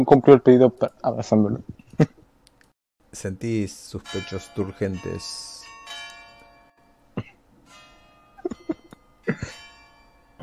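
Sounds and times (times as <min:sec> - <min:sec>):
speech: 0:00.0 - 0:02.2, 0:03.1 - 0:05.6
church bells ringing in a sustained peal: 0:03.5 - 0:10.4.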